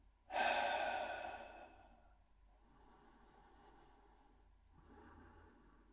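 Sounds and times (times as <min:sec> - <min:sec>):
double breath exhaled through the mouth during a breathing exercise: 0:00.3 - 0:02.0.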